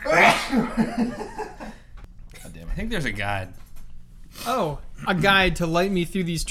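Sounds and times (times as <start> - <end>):
person sneezing: 0.0 - 0.8
speech: 0.1 - 1.2, 2.9 - 3.6, 4.4 - 6.4.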